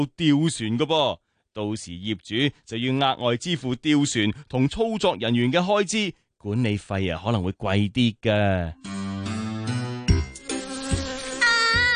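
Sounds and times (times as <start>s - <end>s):
speech: 0.0s - 9.3s
bee buzzing inside a house: 10.1s - 11.9s.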